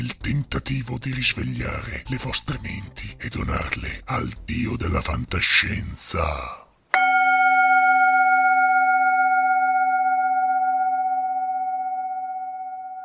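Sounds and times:
speech: 0.4 - 6.6
Tibetan singing bowl struck and ringing: 6.9 - 13.0.

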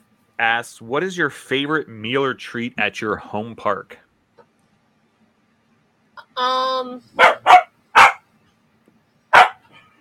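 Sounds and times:
speech: 0.4 - 4.0, 6.4 - 7.4
dog barking: 7.2 - 8.3, 9.3 - 9.7.

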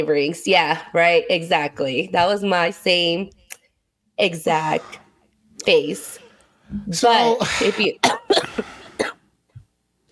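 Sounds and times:
speech: 0.0 - 3.4, 4.2 - 5.0, 5.6 - 8.7
person coughing harshly from phlegm: 7.2 - 9.2.

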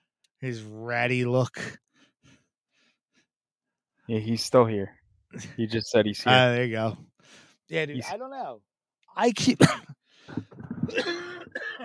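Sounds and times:
speech: 0.4 - 1.8, 4.1 - 11.8
coughing into a microphone: 9.4 - 11.8
throaty vocal noises and murmuring: 10.3 - 11.8.

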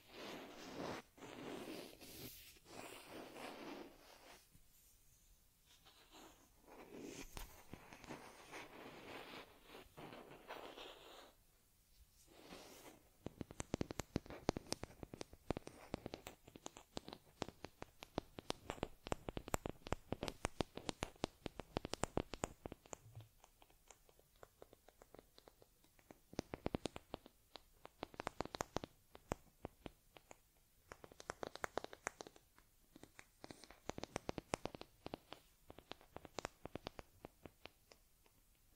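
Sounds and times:
dry rubbing and brushing of grooming a stuffed teddy: 0.0 - 5.1, 5.7 - 11.4, 12.1 - 13.1
rapid crackly scratches of combing a stuffed teddy's fur: 0.0 - 38.7.

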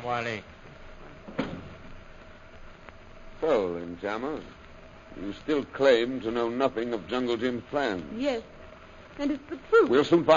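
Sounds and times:
speech: 0.0 - 0.6, 3.4 - 8.6, 9.2 - 10.3
faint hiss: 0.0 - 10.3
soft thump of a door opening or closing: 1.2 - 1.9.

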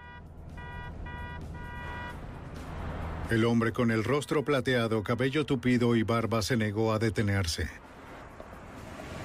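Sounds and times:
bright honking or beeping tone: 0.0 - 2.2
car engine with steady low drone: 0.0 - 4.2, 7.2 - 9.2
road rumble: 0.0 - 9.2
speech: 3.3 - 7.9.

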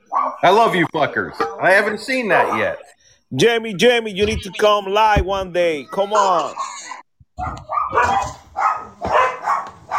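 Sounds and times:
dogs barking and yipping excitedly: 0.0 - 0.4, 1.4 - 1.6, 2.3 - 2.9, 6.0 - 9.9
speech: 0.4 - 6.8, 7.4 - 8.4.

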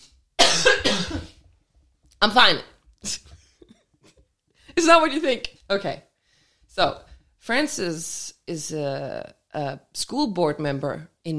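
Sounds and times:
person coughing: 0.4 - 1.4
speech: 2.2 - 3.3, 4.8 - 6.1, 6.8 - 11.3.

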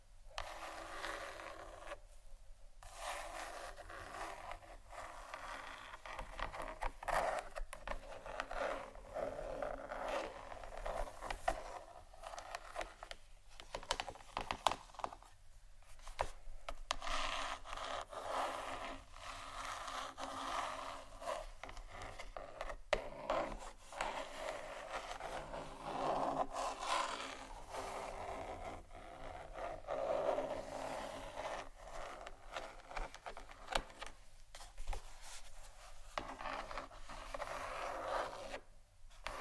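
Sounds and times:
gentle dry rough scratching strokes: 0.3 - 2.1, 2.8 - 39.3.

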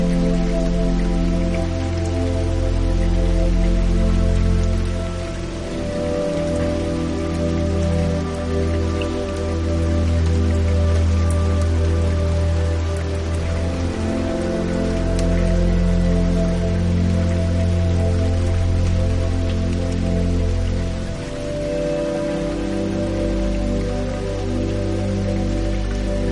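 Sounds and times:
soft rain showers: 0.0 - 26.3.

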